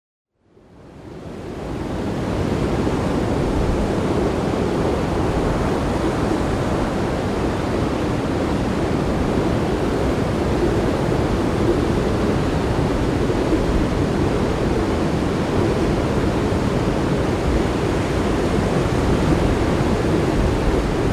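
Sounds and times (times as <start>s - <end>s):
very strong wind: 0.4s - 21.1s.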